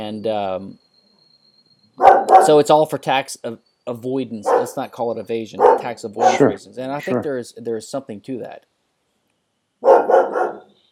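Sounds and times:
speech: 0.0 - 0.9, 2.0 - 8.7
dogs barking: 2.0 - 2.6, 4.4 - 4.8, 5.6 - 7.3, 9.8 - 10.7.

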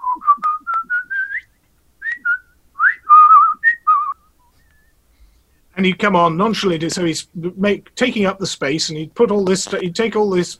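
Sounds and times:
man whistling a jaunty tune in an early pre-vinyl comedy recording: 0.0 - 5.0
speech: 5.8 - 10.5.

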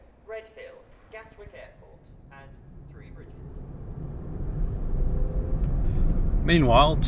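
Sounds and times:
engine and road rumble inside a moving car: 1.5 - 7.0
speech: 6.5 - 7.0.

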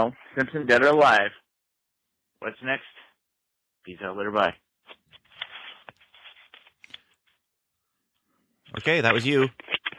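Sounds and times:
speech: 0.0 - 1.4, 2.4 - 3.0, 3.9 - 5.0, 8.7 - 9.8
paper rustling and crinkling over a phone line: 4.8 - 7.2, 8.9 - 9.9
sharper scrapes: 4.9 - 7.0.

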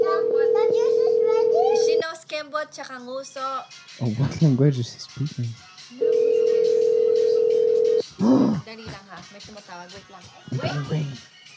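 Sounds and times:
ringing tone on an outgoing phone call: 0.0 - 2.0, 6.0 - 8.0
speech: 2.6 - 6.0, 8.2 - 11.4.

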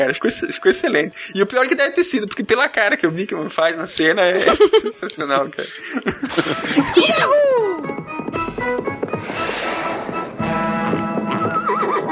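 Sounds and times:
speech: 0.0 - 7.7
people laughing: 4.2 - 7.9
horse hooves clopping: 6.3 - 12.1
horse neighing: 11.4 - 12.1.

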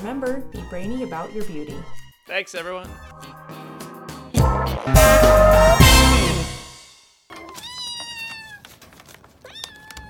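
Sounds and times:
speech: 0.0 - 3.7
loud dense burst of sound: 4.4 - 6.8.

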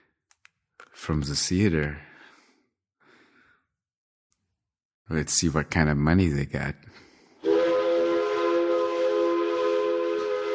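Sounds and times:
speech: 1.0 - 2.1, 5.1 - 7.0
loud steady train whistle: 7.4 - 10.5.

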